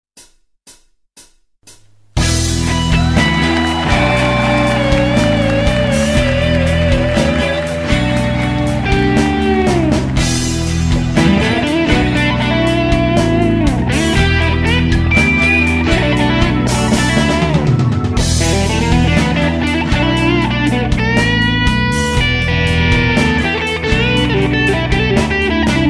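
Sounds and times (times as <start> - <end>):
pop style guitar music: 2.2 - 25.8.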